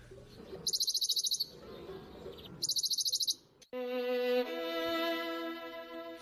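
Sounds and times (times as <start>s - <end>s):
Western Bonelli's warbler trilling: 0.6s - 1.6s, 2.3s - 3.4s
music: 3.8s - 6.2s.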